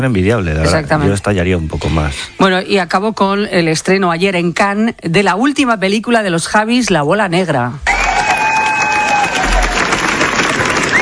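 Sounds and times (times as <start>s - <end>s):
speech: 0.0s - 8.0s
faint whistles and cheers from audience: 7.9s - 10.0s, 10.6s - 11.0s
sustained applause from a large audience at film premiere: 7.9s - 11.0s.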